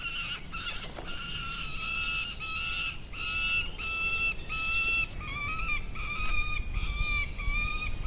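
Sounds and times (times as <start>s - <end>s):
faint steady noise: 0.0s - 8.0s
young peregrine falcon fledglings begging calls: 0.0s - 8.0s.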